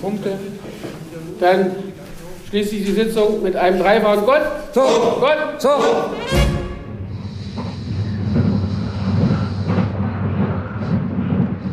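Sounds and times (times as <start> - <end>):
speech: 0.0 - 6.5
moving train to Karlsruhe rumbling inside a carriage: 6.3 - 11.7.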